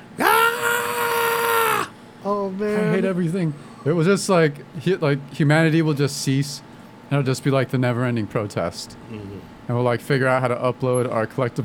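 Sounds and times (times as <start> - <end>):
person screaming in imitation of a protest scream: 0.2 - 2.0
speech: 3.0 - 11.6.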